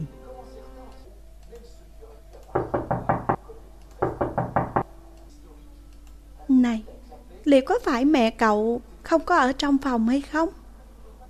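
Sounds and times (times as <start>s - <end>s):
knocking on a bedroom door: 2.6s - 3.4s, 4.0s - 4.9s
speech: 7.5s - 10.6s.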